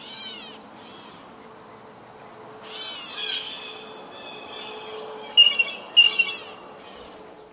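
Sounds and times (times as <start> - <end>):
blue jay harsh calls: 0.0 - 1.1, 2.6 - 7.2.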